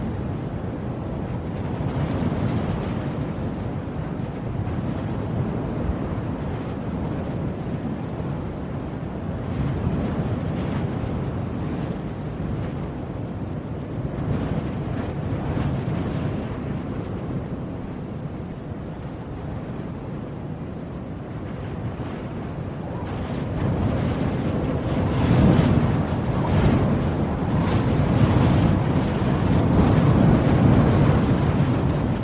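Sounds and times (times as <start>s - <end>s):
cold blustery wind roaring outdoors: 0.0s - 32.2s.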